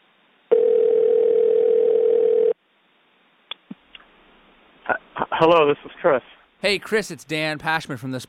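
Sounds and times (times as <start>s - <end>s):
telephone dial tone of an outgoing call: 0.5s - 2.6s
speech: 5.4s - 8.2s.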